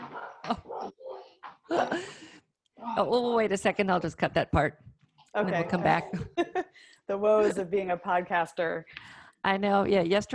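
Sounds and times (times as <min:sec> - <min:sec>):
dogs barking outside: 0:00.0 - 0:01.4
speech: 0:00.5 - 0:01.0, 0:01.7 - 0:06.5, 0:07.1 - 0:10.3.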